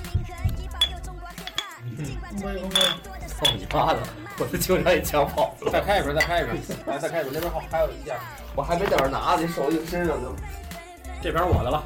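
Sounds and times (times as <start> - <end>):
voices and chatter: 0.7 - 11.8
drinking glasses clinking in a toast: 0.8 - 1.8, 2.7 - 3.8, 6.2 - 6.5
speech: 2.0 - 10.6, 11.2 - 11.8.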